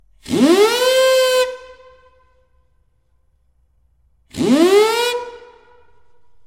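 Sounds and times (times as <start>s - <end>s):
steam siren: 0.2s - 2.3s, 4.3s - 6.2s.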